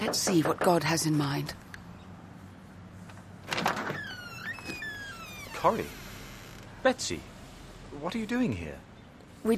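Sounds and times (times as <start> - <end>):
quick knocks on a door: 0.0 - 0.9
speech: 0.1 - 1.7, 5.6 - 6.0, 6.8 - 7.3, 7.9 - 9.5
door creaking open with a thin rising creak: 3.4 - 6.9.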